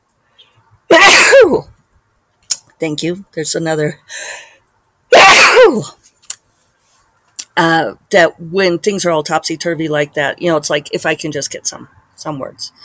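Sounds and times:
person sneezing: 0:00.9 - 0:01.6, 0:05.1 - 0:05.9
speech: 0:00.9 - 0:01.7, 0:02.8 - 0:04.5, 0:05.7 - 0:06.0, 0:07.6 - 0:12.8.

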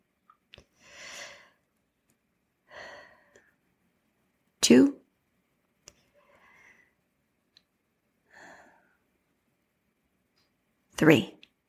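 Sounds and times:
deep breath in and out: 0:00.8 - 0:01.6, 0:02.7 - 0:03.5, 0:06.1 - 0:07.0, 0:08.3 - 0:09.1
speech: 0:04.7 - 0:05.0, 0:11.0 - 0:11.4.

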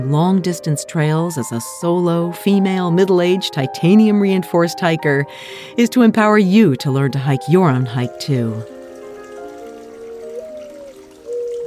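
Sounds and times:
speech: 0:00.0 - 0:08.7
small brook babbling at night: 0:06.8 - 0:11.6.

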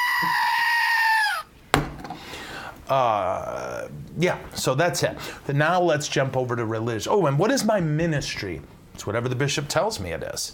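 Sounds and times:
screaming goat novelty toy: 0:00.0 - 0:01.5
speech: 0:00.2 - 0:00.5, 0:02.9 - 0:10.5.

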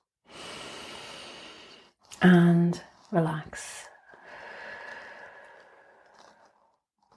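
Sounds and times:
slow deep inhaled breath: 0:00.2 - 0:02.0, 0:04.1 - 0:06.5
speech: 0:02.2 - 0:03.8.

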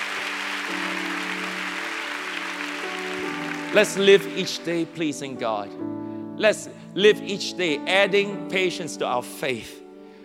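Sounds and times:
large group clapping for God: 0:00.0 - 0:05.3
speech: 0:03.7 - 0:09.8.

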